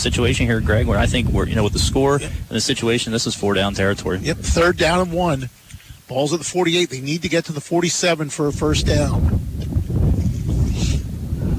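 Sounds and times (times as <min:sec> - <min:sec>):
wind buffeting a microphone at an outdoor high school football game: 0:00.0 - 0:06.1, 0:08.4 - 0:11.5
speech: 0:00.0 - 0:09.4.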